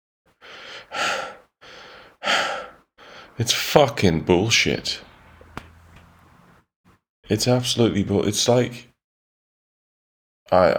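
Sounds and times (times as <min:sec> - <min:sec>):
person panting heavily: 0:00.4 - 0:03.4
speech: 0:03.4 - 0:05.1, 0:07.3 - 0:08.9, 0:10.5 - 0:10.7.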